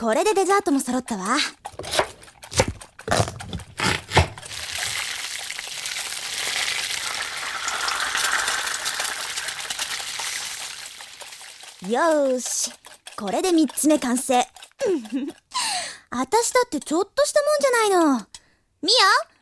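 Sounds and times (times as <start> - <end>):
speech: 0.0 - 2.0, 11.9 - 15.4, 16.1 - 19.3
fresh cream being whisked: 0.7 - 15.6.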